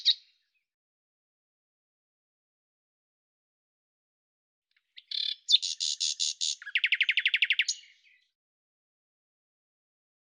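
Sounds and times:
common nightingale singing buzzy pulses and a fast rattle: 0.0 - 0.3, 4.8 - 8.2.

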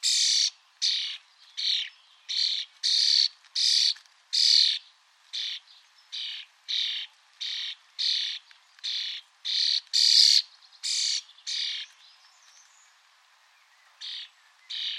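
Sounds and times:
bird calling with short rasping high-pitched notes: 0.0 - 12.8, 13.6 - 14.9.

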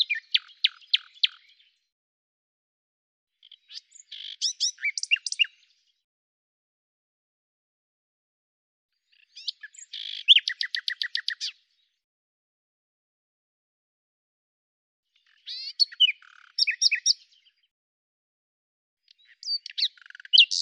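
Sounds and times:
common nightingale singing: 0.0 - 1.8, 3.4 - 5.7, 9.1 - 11.7, 15.2 - 17.6, 19.1 - 20.5.

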